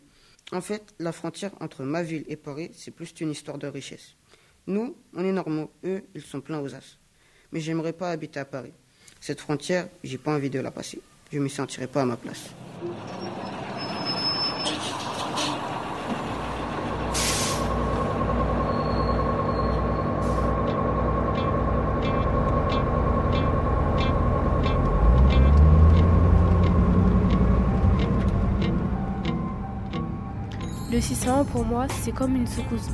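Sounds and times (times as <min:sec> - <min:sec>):
speech: 0:00.5 - 0:13.4, 0:31.4 - 0:32.9
city bus engine droning in Clichy: 0:12.3 - 0:32.9
city bus air-brake hiss: 0:17.0 - 0:18.0, 0:20.2 - 0:20.6
steady ticking: 0:17.8 - 0:30.1.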